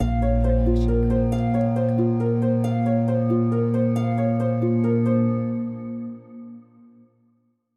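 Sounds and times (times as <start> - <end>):
mystery harp: 0.0 - 7.0.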